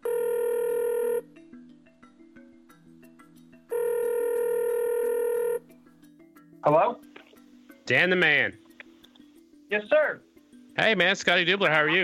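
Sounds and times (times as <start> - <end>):
electronic ring tones of an outgoing telephone call: 0.0 - 1.3, 3.7 - 5.7
speech: 6.6 - 7.1, 7.9 - 8.6, 9.7 - 12.0.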